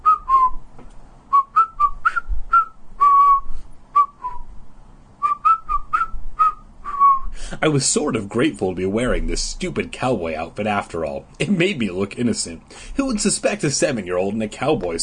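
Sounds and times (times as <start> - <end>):
person whistling a short bouncy tune: 0.0 - 0.6, 1.3 - 4.5, 5.2 - 7.4
speech: 7.6 - 15.0.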